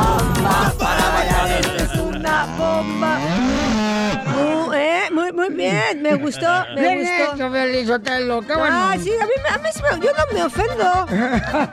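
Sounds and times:
busy layered backdrop: 0:00.0 - 0:11.7
loud cow mooing sound effect: 0:02.2 - 0:04.4
laughter: 0:04.0 - 0:07.2, 0:09.9 - 0:11.7
speech: 0:05.9 - 0:11.7.

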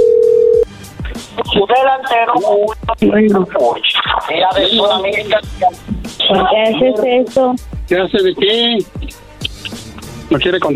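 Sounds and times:
telephone dial tone: 0:00.0 - 0:00.6
people talking over the telephone line: 0:01.4 - 0:09.7
speech: 0:01.6 - 0:09.0, 0:10.3 - 0:10.7.

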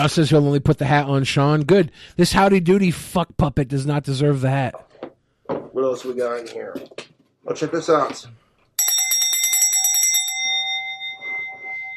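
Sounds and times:
speech: 0:00.0 - 0:04.9, 0:05.8 - 0:08.4
small high-pitched bell ringing: 0:08.8 - 0:11.9.

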